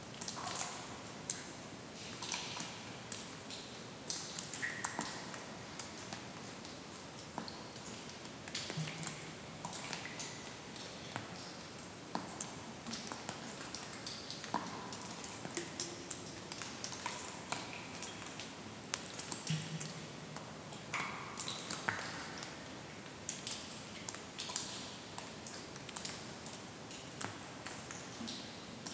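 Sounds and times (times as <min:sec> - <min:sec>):
water dripping in a cave: 0:00.0 - 0:28.9.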